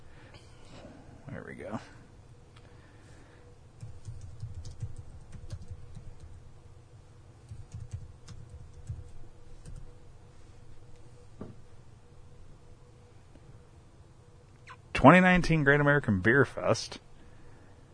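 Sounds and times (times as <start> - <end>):
low steady hum: 0.0 - 17.9
speech: 1.4 - 2.0, 15.0 - 17.1
typing on a computer keyboard: 3.8 - 6.4, 7.5 - 9.9.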